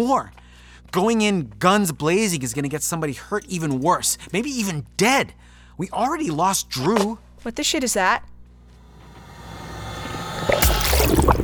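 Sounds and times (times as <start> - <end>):
speech: 0.0 - 8.3
low rumbling hum: 8.2 - 11.4.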